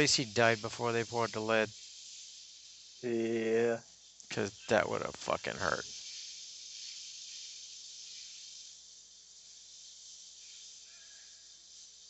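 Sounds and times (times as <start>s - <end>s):
speech: 0.0s - 1.9s, 3.0s - 5.9s
steam hissing: 0.0s - 12.0s.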